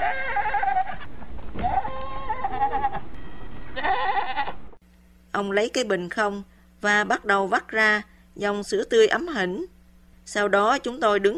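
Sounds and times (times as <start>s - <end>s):
female goat bleating in the back of a vehicle: 0.0s - 3.0s, 3.8s - 4.6s
faint hum: 0.0s - 11.3s
speech: 5.4s - 9.7s, 10.3s - 11.3s.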